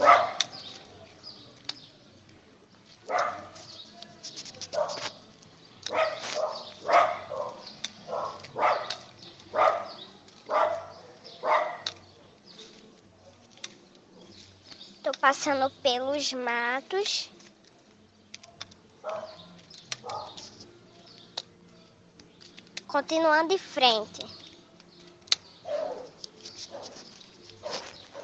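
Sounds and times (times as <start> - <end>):
dogs barking outdoors: 0.0 - 0.6, 3.0 - 3.6, 4.7 - 5.2, 5.9 - 12.0, 19.0 - 20.5, 25.6 - 28.2
speech: 15.3 - 17.4, 23.0 - 24.4.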